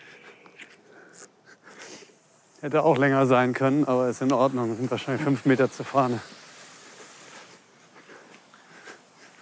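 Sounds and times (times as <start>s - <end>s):
lawn sprinkler spraying water: 1.7s - 9.3s
speech: 2.6s - 6.4s.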